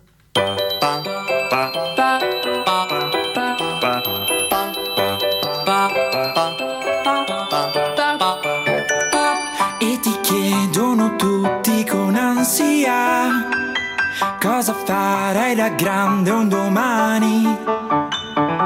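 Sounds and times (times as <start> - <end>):
instrumental song intro with band arrangement: 0.3 - 18.6
bright chiming bell-like tones: 0.4 - 11.8, 13.2 - 14.7
speech: 15.4 - 17.9.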